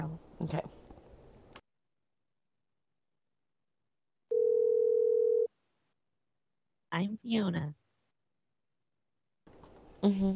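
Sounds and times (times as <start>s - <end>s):
speech: 0.4s - 0.8s, 7.0s - 7.8s, 10.0s - 10.3s
telephone tone while a number is being called: 4.3s - 5.5s.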